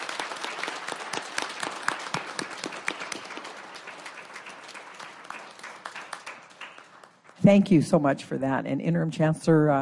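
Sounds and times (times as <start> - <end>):
round of applause from a group: 0.0 - 7.6
speech: 7.4 - 9.7.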